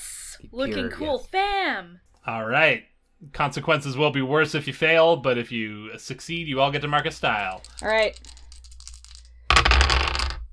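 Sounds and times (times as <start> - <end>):
speech: 0.4 - 8.4
dice clattering and tumbling across a hard surface: 6.7 - 10.5.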